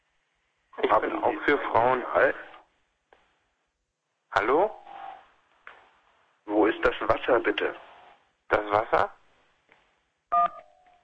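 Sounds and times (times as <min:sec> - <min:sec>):
speech: 0:00.8 - 0:02.5, 0:04.4 - 0:04.8, 0:06.8 - 0:07.9, 0:08.5 - 0:09.2
telephone dual-tone beep: 0:10.3 - 0:10.9.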